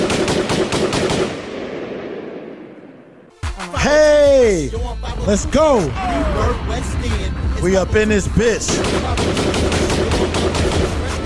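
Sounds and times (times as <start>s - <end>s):
rapid gunfire bursts: 0.0s - 1.6s, 8.7s - 11.2s
speech: 3.8s - 10.0s.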